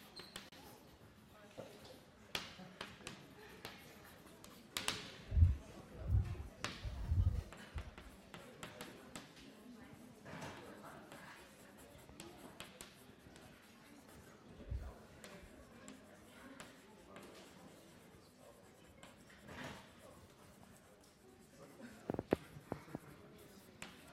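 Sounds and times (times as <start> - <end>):
scratchy writing strokes: 0.0 - 24.1.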